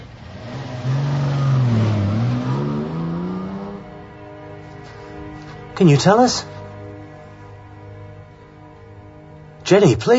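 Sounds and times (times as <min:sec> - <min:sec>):
car engine roaring as it drives off: 0:00.0 - 0:10.1
speech: 0:05.8 - 0:06.5, 0:09.7 - 0:10.1.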